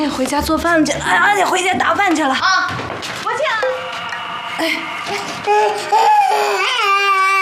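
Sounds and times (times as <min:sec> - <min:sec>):
speech: 0:00.2 - 0:03.8, 0:04.6 - 0:06.9
baby crying: 0:05.1 - 0:07.4.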